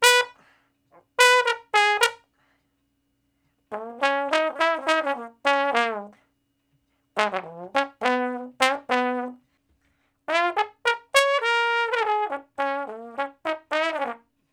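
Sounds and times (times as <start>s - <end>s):
trombone playing slow blues in D flat: 0.0s - 0.4s, 1.0s - 2.2s, 3.7s - 6.2s, 7.2s - 9.4s, 10.3s - 14.2s.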